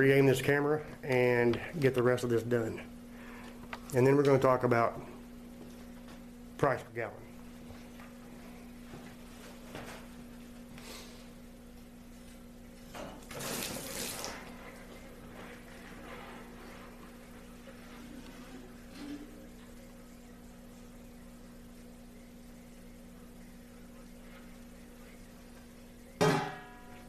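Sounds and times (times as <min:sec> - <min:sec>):
speech: 0:00.0 - 0:03.0, 0:03.9 - 0:05.1, 0:06.6 - 0:07.2
hot tap water running into a container: 0:13.3 - 0:14.4.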